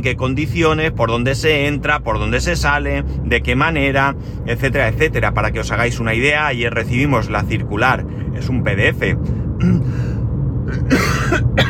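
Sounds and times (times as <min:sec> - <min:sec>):
speech: 0:00.0 - 0:09.8, 0:10.9 - 0:11.6
person coughing: 0:09.6 - 0:10.0, 0:10.7 - 0:11.6.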